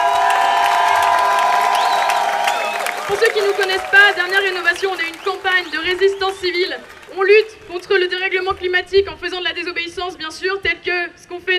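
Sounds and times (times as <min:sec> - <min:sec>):
crowd cheering outside a courthouse: 0:00.0 - 0:08.5
speech: 0:03.1 - 0:11.5.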